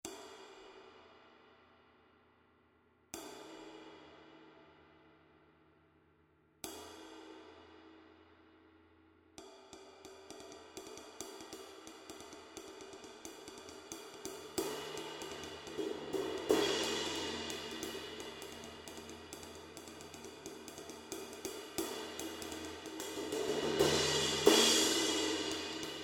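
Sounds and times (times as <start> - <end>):
24-inch vintage ride cymbal: 11.0 - 26.0.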